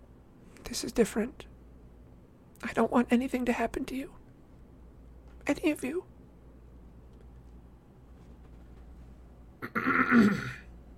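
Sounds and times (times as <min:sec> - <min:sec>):
speech: 0:00.7 - 0:01.5, 0:02.6 - 0:04.2, 0:05.4 - 0:06.1, 0:10.1 - 0:10.6
man clearing his throat: 0:09.6 - 0:10.7.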